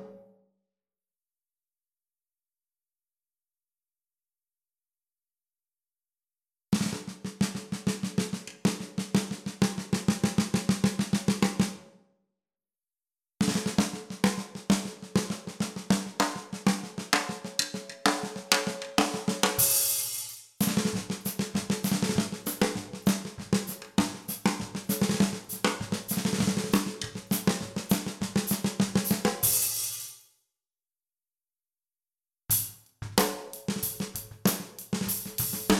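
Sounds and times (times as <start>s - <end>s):
rosewood 14x6.5 snare drum: 6.7s - 11.8s, 13.4s - 30.2s, 32.5s - 35.7s.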